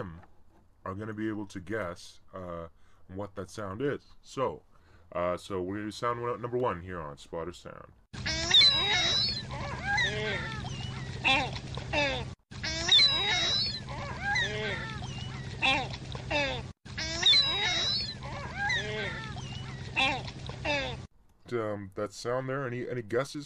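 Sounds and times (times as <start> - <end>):
speech: 0.0 - 0.2, 0.8 - 10.5, 21.5 - 23.4
ring-billed gull calling near water: 8.2 - 21.1
water noise: 8.2 - 21.1.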